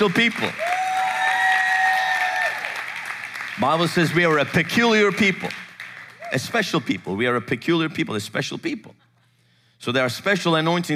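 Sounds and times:
speech: 0:00.0 - 0:00.6, 0:03.6 - 0:05.6, 0:06.3 - 0:09.0, 0:09.8 - 0:10.9
audience clapping: 0:00.0 - 0:07.2.

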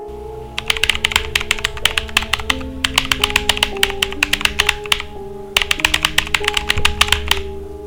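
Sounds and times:
steady low electrical hum: 0:00.0 - 0:00.6, 0:05.1 - 0:05.6, 0:07.4 - 0:07.8
computer keyboard typing: 0:00.6 - 0:07.5.

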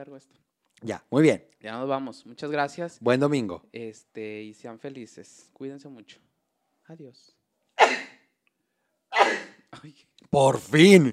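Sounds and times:
speech: 0:00.0 - 0:06.3, 0:06.9 - 0:08.0, 0:09.7 - 0:11.1
person sneezing: 0:07.8 - 0:08.3, 0:09.1 - 0:09.7.

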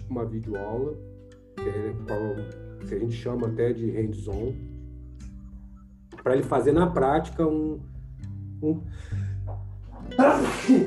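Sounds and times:
speech: 0:00.1 - 0:04.7, 0:06.2 - 0:07.9, 0:08.6 - 0:09.2, 0:10.1 - 0:10.8
sneeze: 0:10.2 - 0:10.8.

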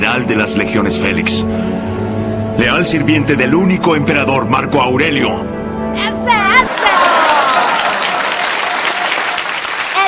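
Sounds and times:
speech: 0:00.0 - 0:06.4
sizable crowd applauding: 0:06.6 - 0:10.0.

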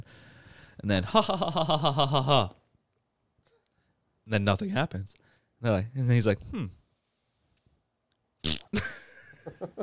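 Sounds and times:
speech: 0:00.8 - 0:02.6, 0:04.3 - 0:06.8, 0:08.7 - 0:09.8
voice making a buzzy mouth fart imitation: 0:08.4 - 0:08.8.

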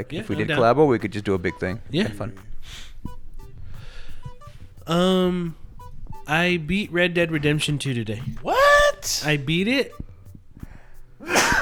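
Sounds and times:
speech: 0:00.0 - 0:03.2, 0:04.9 - 0:05.6, 0:06.3 - 0:10.1
brief quiet inhale: 0:02.5 - 0:04.7, 0:10.6 - 0:11.2
loud sneeze: 0:11.2 - 0:11.5.

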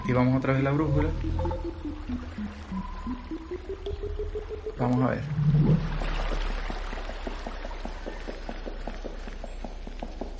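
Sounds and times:
flowing water in a video game: 0:00.0 - 0:10.3
speech: 0:00.1 - 0:06.8
short electronic tones: 0:00.8 - 0:05.7.

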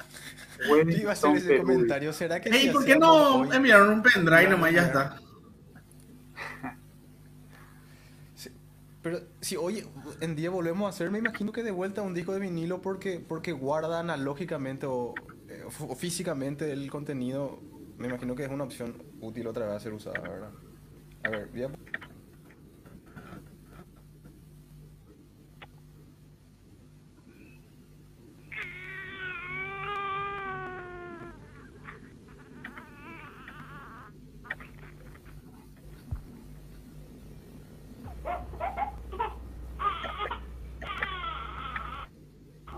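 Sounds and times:
laughter: 0:00.0 - 0:01.2
low hum: 0:00.0 - 0:42.7
speech: 0:00.6 - 0:05.3, 0:09.0 - 0:20.6, 0:21.2 - 0:22.1
infant crying in a recorded message: 0:28.5 - 0:34.2, 0:38.6 - 0:42.1.

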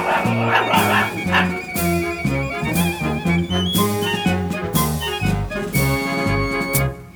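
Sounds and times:
dog barking and yipping: 0:00.0 - 0:01.9
laughter: 0:00.0 - 0:02.7
loud marching band with brass and drums: 0:00.0 - 0:06.9.

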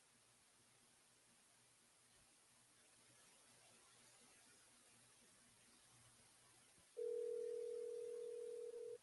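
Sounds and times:
telephone dial tone: 0:07.0 - 0:09.0.

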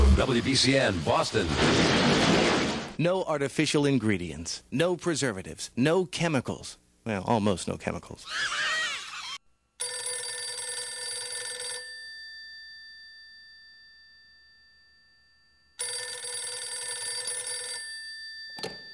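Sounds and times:
speech: 0:00.3 - 0:08.8
telephone bell ringing: 0:09.8 - 0:18.9.

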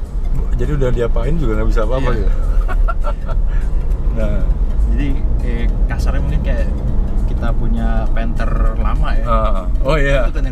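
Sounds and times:
turbo diesel SUV engine droning in cabin: 0:00.0 - 0:10.5
speech: 0:00.6 - 0:10.5
people laughing: 0:02.0 - 0:03.7.

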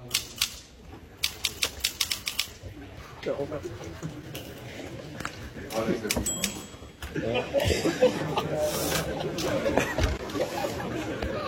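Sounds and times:
very old mechanical typewriter keystrokes: 0:01.2 - 0:02.5
speech: 0:03.2 - 0:04.5, 0:05.8 - 0:11.4
laughter: 0:03.4 - 0:11.4.

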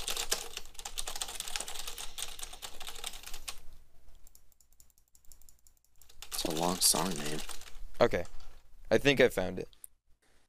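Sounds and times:
loud typing on a computer keyboard: 0:00.0 - 0:03.6, 0:04.2 - 0:08.3
speech: 0:06.4 - 0:09.8.

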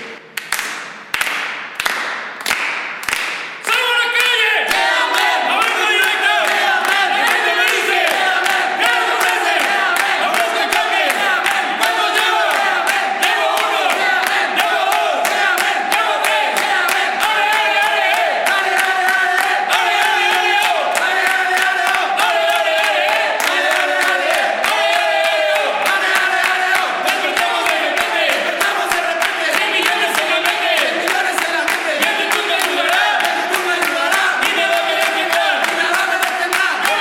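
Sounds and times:
rhythmic claps or stomps: 0:00.0 - 0:36.9
team of salespeople shouting a cheer in unison: 0:04.4 - 0:31.0.

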